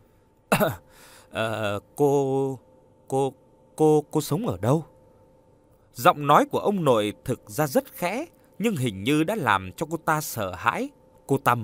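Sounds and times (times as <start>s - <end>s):
elderly man dry coughing at the dinner table: 0.5s - 1.5s
speech: 0.5s - 4.9s, 6.0s - 11.6s.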